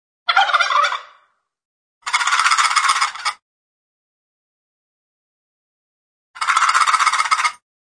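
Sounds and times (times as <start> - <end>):
turkey gobbling: 0.3 - 1.4, 2.0 - 3.3, 6.4 - 7.5.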